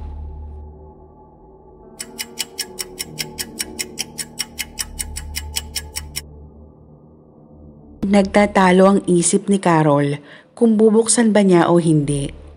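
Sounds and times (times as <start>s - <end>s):
low quiet hum: 0.0s - 2.1s, 3.8s - 10.8s
clock ticking: 2.0s - 6.2s
speech: 8.1s - 12.4s.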